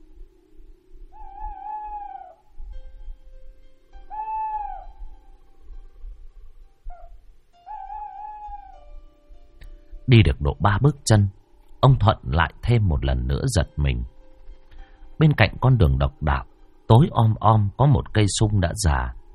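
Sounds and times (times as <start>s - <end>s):
faint low rumble: 0.0s - 19.3s
owl hooting at night near a dark village road: 1.1s - 2.6s, 4.0s - 5.4s, 6.4s - 8.9s
speech: 10.1s - 14.2s, 15.2s - 19.2s.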